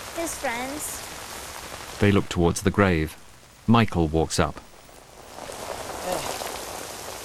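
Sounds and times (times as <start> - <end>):
faint voices murmuring: 0.0 - 1.1, 1.8 - 5.0, 5.9 - 6.5
steady rain pattering on a surface: 0.0 - 7.2
speech: 0.2 - 4.7.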